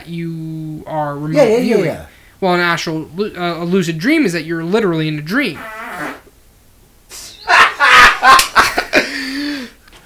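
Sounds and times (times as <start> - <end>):
speech: 0.0 - 5.8
buzzy drawn-out fart: 5.6 - 6.3
people laughing: 7.4 - 9.4.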